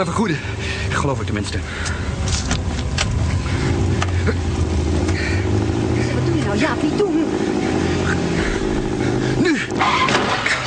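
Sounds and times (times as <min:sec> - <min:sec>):
speech: 0:00.0 - 0:02.6, 0:04.2 - 0:04.7, 0:06.5 - 0:07.7, 0:09.4 - 0:10.1
car engine rumbling while driving at speed in pursuit: 0:00.0 - 0:10.6.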